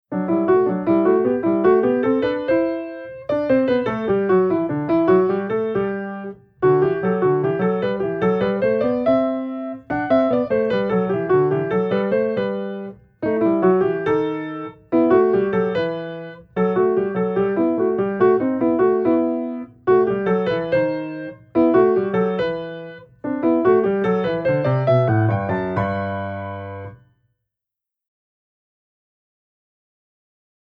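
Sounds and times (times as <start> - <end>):
piano exercise with a combination: 0.0 - 27.1.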